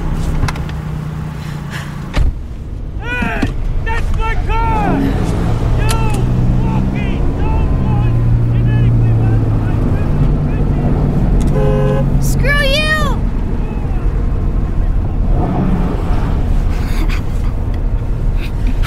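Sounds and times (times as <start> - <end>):
heavy old truck engine rumbling while driving: 0.0 - 18.8
voices: 3.0 - 15.7.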